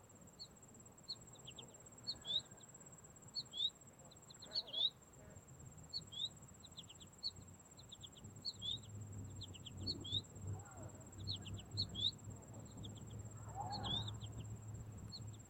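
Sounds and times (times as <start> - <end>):
American Goldfinch Carduelis tristis calling: 3.4 - 5.0, 5.9 - 15.4
low background rumble: 5.4 - 15.4.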